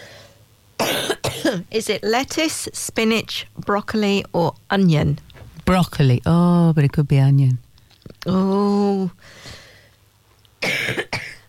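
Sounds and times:
person with a frog in the throat coughing and clearing throat during a quiz: 0:00.8 - 0:01.6, 0:10.6 - 0:11.4
speech: 0:01.5 - 0:07.6, 0:08.2 - 0:09.6.

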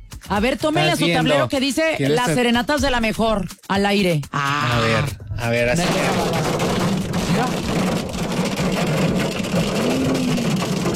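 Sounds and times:
speech: 0:00.3 - 0:06.8, 0:07.4 - 0:08.1
hail drumming across a surface: 0:05.8 - 0:10.9.

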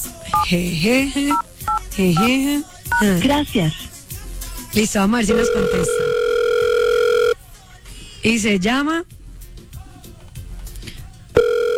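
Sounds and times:
telephone keypad tones entering a password: 0:00.3 - 0:00.6, 0:01.3 - 0:03.2, 0:05.2 - 0:07.4, 0:11.4 - 0:11.7
speech: 0:00.5 - 0:03.9, 0:04.7 - 0:06.2, 0:08.2 - 0:09.2.

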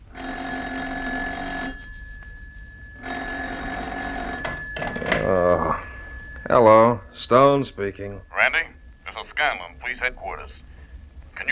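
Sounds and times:
telephone bell ringing in an office: 0:00.0 - 0:09.2
speech: 0:06.6 - 0:08.3, 0:09.4 - 0:10.7.

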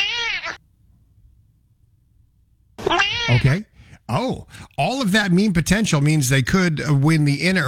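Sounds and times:
cat meowing at doorbell camera: 0:00.0 - 0:00.6, 0:02.8 - 0:03.6
hum: 0:00.0 - 0:07.6
speech: 0:02.9 - 0:07.6.

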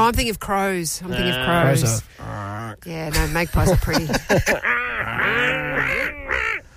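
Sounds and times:
speech: 0:00.1 - 0:06.5
laughter: 0:03.1 - 0:06.0
seagull squawking: 0:04.6 - 0:06.7.

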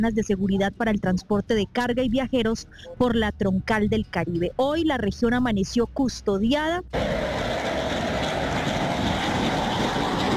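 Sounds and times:
speech: 0:00.0 - 0:07.3
combat jet roaring overhead: 0:07.0 - 0:10.3.

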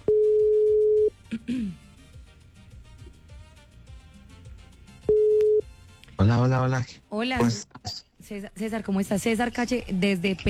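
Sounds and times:
ringback tone of an outgoing telephone call: 0:00.0 - 0:01.2, 0:05.0 - 0:05.7
speech: 0:06.2 - 0:10.4.

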